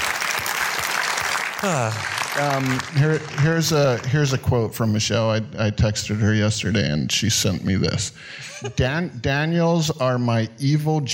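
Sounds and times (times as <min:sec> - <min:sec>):
voice rising above applause, possibly a cheer: 0:00.0 - 0:04.1
crowd clapping steadily in a room: 0:00.0 - 0:04.8
speech: 0:01.6 - 0:11.1.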